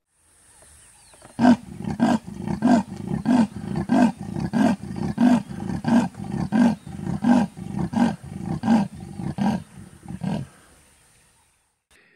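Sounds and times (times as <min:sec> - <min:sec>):
big cat roaring in deep grunting bursts: 0:01.4 - 0:10.5.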